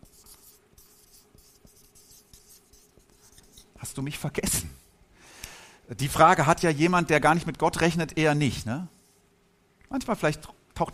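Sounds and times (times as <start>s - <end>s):
handwriting a single word: 0.0s - 3.8s
speech: 3.8s - 4.8s, 5.9s - 9.0s, 9.9s - 10.9s.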